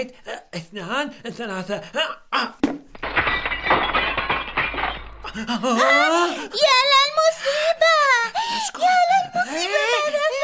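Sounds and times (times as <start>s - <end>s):
speech: 0.0s - 4.0s, 5.3s - 7.9s, 8.6s - 10.4s
window glass shattering inside a house: 2.8s - 5.9s
glass shards cascading and settling: 2.9s - 5.6s.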